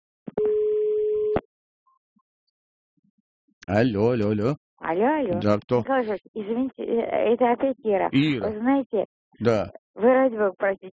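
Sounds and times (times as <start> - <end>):
telephone line tone as call connects: 0.4 - 1.4
speech: 3.7 - 10.9.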